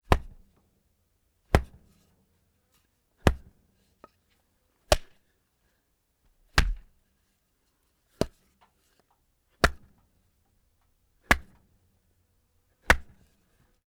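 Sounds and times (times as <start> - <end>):
2x4 wood hitting pig body: 0.1 - 0.4, 3.3 - 3.5, 4.9 - 5.1, 6.6 - 6.9, 9.6 - 9.9, 11.3 - 11.6, 12.9 - 13.2.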